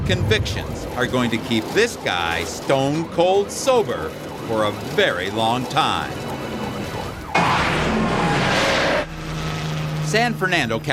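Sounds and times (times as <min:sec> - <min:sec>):
speech: 0:00.1 - 0:06.2, 0:10.1 - 0:10.9
wailing siren in a police chase: 0:00.2 - 0:10.8
stolen car speeding past in a police chase: 0:07.2 - 0:10.7.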